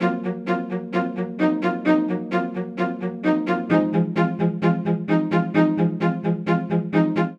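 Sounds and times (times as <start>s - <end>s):
string quartet suspense and release phrase in F minor: 0.0s - 7.3s.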